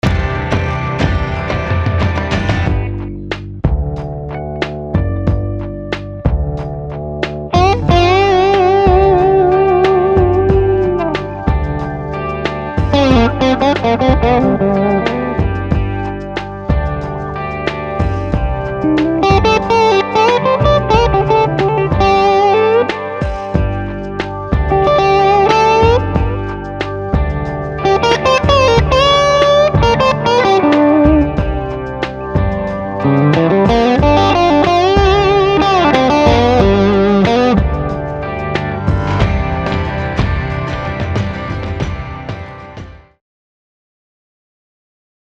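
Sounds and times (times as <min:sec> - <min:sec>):
electric guitar: 0:00.0 - 0:43.2.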